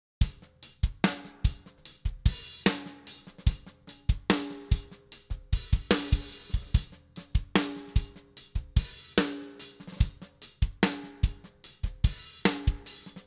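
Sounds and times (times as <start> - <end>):
flat drums: 0.1 - 13.2.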